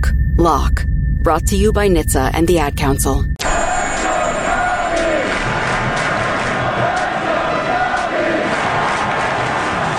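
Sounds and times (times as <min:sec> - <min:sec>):
speech: 0:00.4 - 0:03.3
large stadium crowd chanting in rhythmic unison: 0:03.4 - 0:09.9.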